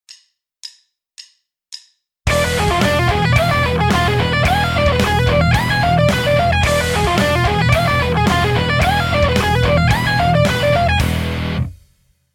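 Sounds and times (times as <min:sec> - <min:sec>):
electric guitar shred lick: 0:02.3 - 0:11.8.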